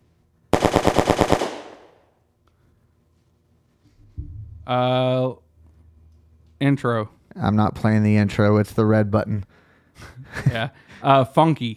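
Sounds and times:
machine gun fire: 0.6s - 2.0s
low thud: 4.0s - 4.8s
speech: 4.7s - 5.4s, 6.6s - 11.7s.

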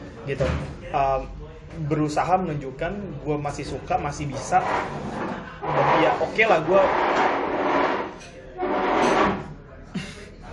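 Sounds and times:
speech: 0.2s - 7.3s
chair dragged across floor: 4.2s - 9.6s
laughter: 9.9s - 10.5s.

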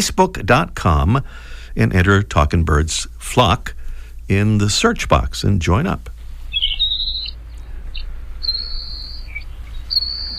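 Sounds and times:
speech: 0.0s - 6.1s
steady low rumble: 0.0s - 10.3s
Saltmarsh Sparrow song: 6.2s - 10.3s.

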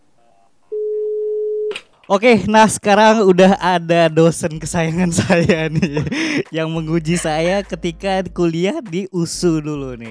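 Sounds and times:
low-pitched telephone ringback tone on an outgoing call: 0.7s - 1.7s
speech: 2.1s - 10.1s
laughter: 5.1s - 7.7s.

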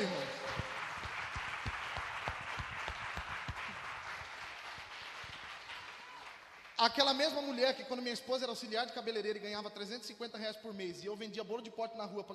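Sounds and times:
large crowd applauding: 0.0s - 7.6s
speech: 6.8s - 12.3s.

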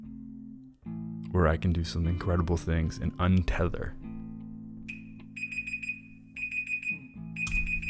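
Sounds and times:
speech: 1.3s - 4.1s
alarm clock ringing in shrill electronic beeps: 4.9s - 7.8s.

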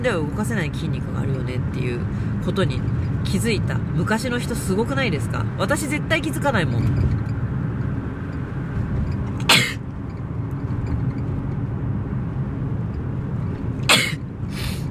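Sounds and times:
speech: 0.0s - 7.2s
low rumble: 0.0s - 14.8s
person sneezing: 9.5s - 9.8s, 13.9s - 14.8s.

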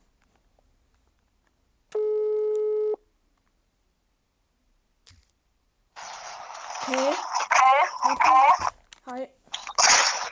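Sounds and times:
telephone call tone on an outgoing call: 2.0s - 3.0s
speech: 6.9s - 7.4s, 8.0s - 9.4s.

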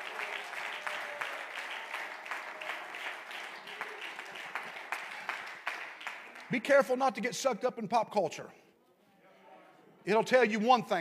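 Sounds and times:
audience clapping hands: 0.0s - 7.3s
speech: 6.5s - 8.6s, 10.0s - 10.9s.

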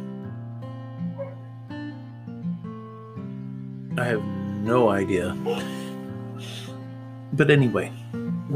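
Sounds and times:
dogs in a house barking and whining: 1.1s - 1.6s
speech: 4.0s - 5.9s, 7.3s - 8.5s.

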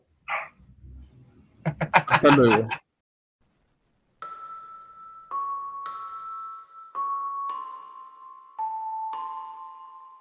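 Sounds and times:
dog barking sharply: 0.3s - 0.6s
laughter: 1.7s - 2.8s
speech: 1.8s - 2.8s.

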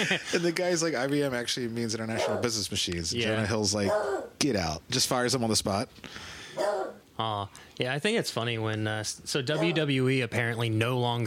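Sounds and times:
laughter: 0.0s - 0.6s
speech: 0.0s - 11.2s
beagle dog barking: 2.2s - 2.5s, 3.9s - 4.3s, 6.6s - 7.0s, 9.5s - 9.8s.

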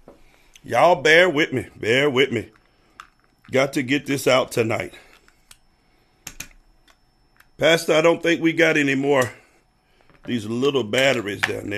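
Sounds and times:
quiet hum: 0.0s - 11.7s
speech: 0.6s - 2.6s, 3.5s - 5.1s, 7.6s - 9.4s, 10.2s - 11.7s
sharp keystrokes on a computer keyboard: 6.3s - 6.6s.

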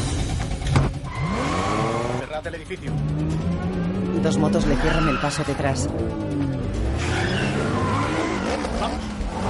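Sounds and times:
red Audi engine and tire roar driving into a car park: 0.0s - 9.4s
red Audi tires squealing in a car park: 1.0s - 2.4s, 3.8s - 6.0s, 6.7s - 9.4s
speech: 2.4s - 7.4s.

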